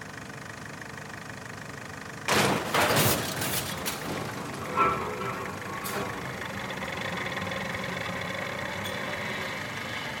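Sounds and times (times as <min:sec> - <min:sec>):
heavy machine engine running: 0:00.0 - 0:10.1.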